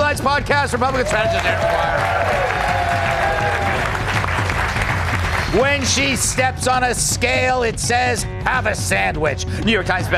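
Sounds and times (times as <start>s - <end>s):
speech: 0.2s - 2.7s, 5.5s - 10.1s
studio audience applause: 0.8s - 6.4s.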